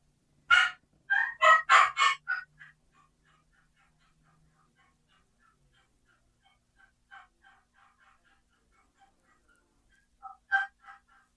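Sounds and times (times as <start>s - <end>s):
wild turkey hen yelp played on a turkey call: 0.5s - 2.5s, 10.2s - 11.0s.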